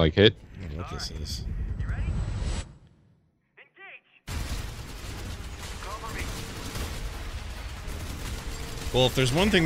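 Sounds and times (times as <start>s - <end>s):
speech: 0.0s - 1.6s, 8.9s - 9.6s
gunfire in a VR first-person shooter video game: 4.3s - 9.6s.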